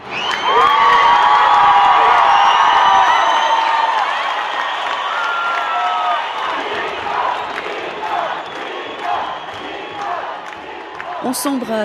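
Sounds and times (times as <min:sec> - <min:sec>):
huge crowd roaring and cheering outdoors in a square: 0:00.0 - 0:11.8
speech: 0:11.3 - 0:11.8.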